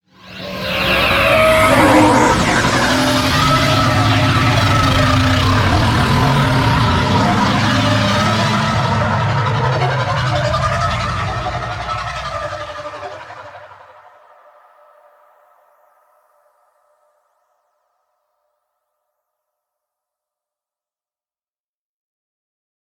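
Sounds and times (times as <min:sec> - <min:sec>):
flight vehicle undocking: 0:00.3 - 0:14.0.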